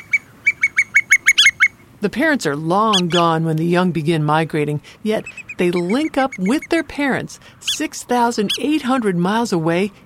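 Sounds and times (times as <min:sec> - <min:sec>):
bar-tailed godwit calls: 0:00.0 - 0:01.8, 0:02.8 - 0:03.4, 0:05.1 - 0:06.9, 0:07.6 - 0:09.0
speech: 0:02.0 - 0:10.0.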